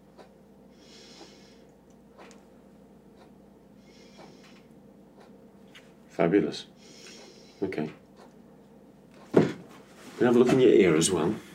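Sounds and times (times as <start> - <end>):
low steady hum: 0.0 - 11.5
patient breathing deeply during a medical chest examination: 0.7 - 1.8, 3.8 - 4.7, 6.7 - 7.8
speech: 6.2 - 6.8, 7.6 - 8.0, 10.2 - 11.5.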